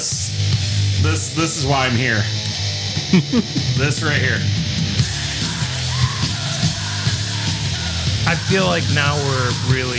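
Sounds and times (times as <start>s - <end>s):
wall of distorted guitar in black metal: 0.0s - 9.9s
speech: 1.0s - 2.5s, 3.1s - 4.7s, 8.5s - 9.9s
laughter: 3.0s - 3.8s
harsh screamed vocals: 5.2s - 8.1s.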